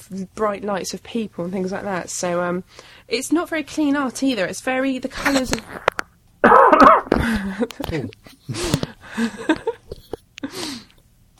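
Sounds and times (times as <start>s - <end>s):
speech: 0.0s - 9.7s
loud harsh cough: 6.4s - 8.9s.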